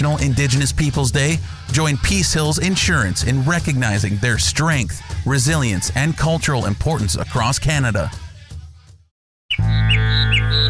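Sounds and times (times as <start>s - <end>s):
speech: 0.1s - 8.3s
birds calling in springtime: 9.5s - 10.6s.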